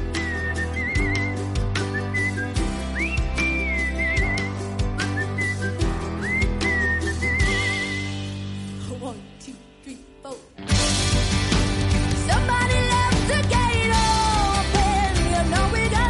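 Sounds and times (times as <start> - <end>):
whistled melody with rising glides and trilled notes: 0.0 - 8.4
full band backing: 0.0 - 9.3, 10.6 - 16.0.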